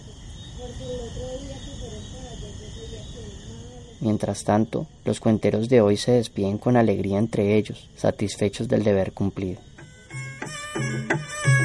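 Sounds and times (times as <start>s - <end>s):
crickets chirping at night in a small plaza: 0.0s - 11.6s
speech: 0.8s - 9.7s.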